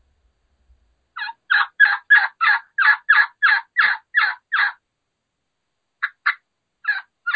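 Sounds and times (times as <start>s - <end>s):
rollover yelps of a hen turkey imitated on a turkey call: 1.2s - 4.8s, 6.0s - 7.3s.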